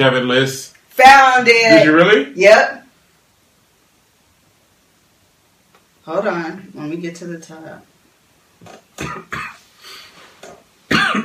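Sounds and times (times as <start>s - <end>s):
speech: 0.0s - 2.8s, 6.1s - 7.9s, 8.6s - 9.5s
person coughing: 9.0s - 9.6s, 10.9s - 11.2s.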